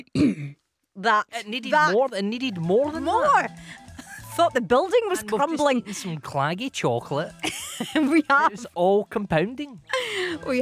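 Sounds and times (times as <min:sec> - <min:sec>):
person clearing throat: 0:00.0 - 0:00.6
speech: 0:00.2 - 0:03.8, 0:04.4 - 0:10.6
laughter: 0:03.8 - 0:06.3, 0:07.3 - 0:08.8.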